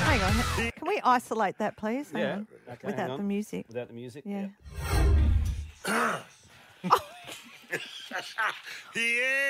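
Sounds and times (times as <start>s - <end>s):
speech: 0.2s - 5.2s, 5.9s - 9.4s
short throaty cough: 5.8s - 6.4s, 6.9s - 8.8s
small vocal noises: 5.8s - 6.5s.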